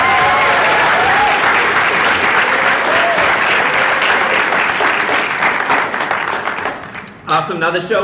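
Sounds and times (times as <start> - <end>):
people cheering: 0.0 - 6.7
convention audience applause: 0.0 - 7.1
speech: 7.5 - 8.0.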